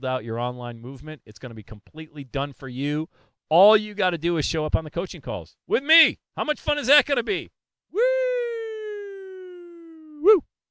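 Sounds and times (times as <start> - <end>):
speech: 0.0 - 8.2
person's voice imitating a siren: 8.0 - 10.5.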